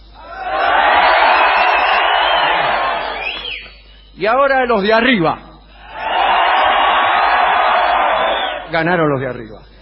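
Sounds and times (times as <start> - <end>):
section of a large crowd shouting together: 0.2 - 3.2, 5.9 - 8.7
speech: 4.2 - 5.4, 8.7 - 9.7.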